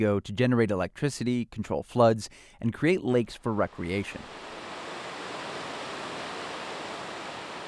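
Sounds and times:
speech: 0.0 - 4.6
water rushing over a river dam: 3.7 - 7.6.

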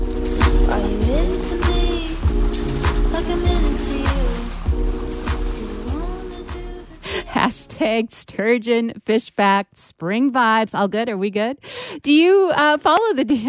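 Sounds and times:
low droning hum: 0.0 - 6.9
steady rush of water: 0.0 - 7.6
speech: 7.9 - 13.4.

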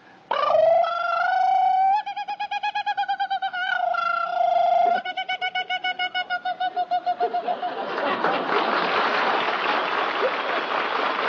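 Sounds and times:
person imitating a kookaburra call: 0.3 - 7.6
laughter: 5.0 - 11.2.

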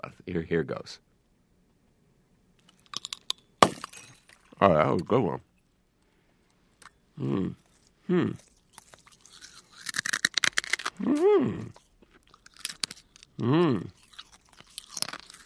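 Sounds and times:
speech: 0.3 - 1.1, 4.6 - 5.5, 7.2 - 8.5, 11.0 - 11.8, 13.4 - 14.0
crunching and chewing of glass: 2.6 - 3.6, 6.5 - 15.4
short voiced grunts or hums: 7.2 - 8.4, 11.0 - 11.8, 13.4 - 14.0.

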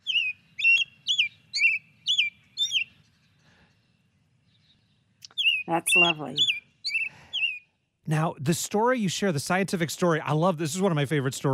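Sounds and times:
American robin singing whistled phrases: 0.0 - 8.0
speech: 5.7 - 6.6, 8.1 - 11.5.

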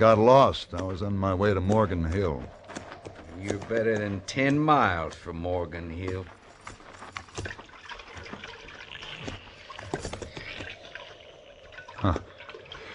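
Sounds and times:
speech: 0.0 - 2.8, 3.4 - 6.4
water splashing in a shallow trough: 7.2 - 12.9.

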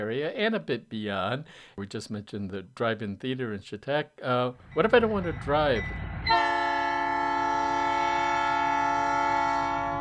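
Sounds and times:
speech: 0.0 - 6.4
faint rail rumble: 4.6 - 9.9
loud sustained train horn blaring one steady chord: 6.0 - 9.9.

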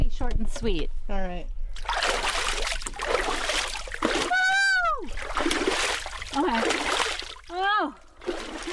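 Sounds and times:
speech: 0.2 - 2.3
ice water splashing on face and hands: 1.8 - 8.7.

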